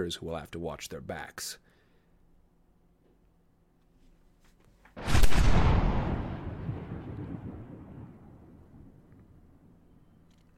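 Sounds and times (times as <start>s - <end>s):
speech: 0.0s - 1.7s
cannon boom: 5.0s - 9.1s.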